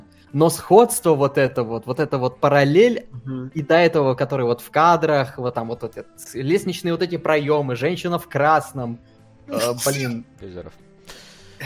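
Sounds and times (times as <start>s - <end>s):
speech: 0.3s - 10.9s
person sneezing: 9.5s - 10.2s
laughter: 9.6s - 10.2s.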